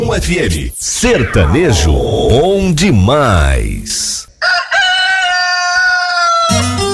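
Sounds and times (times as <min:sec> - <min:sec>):
speech: 0:00.2 - 0:04.2
rooster crowing: 0:04.4 - 0:06.8.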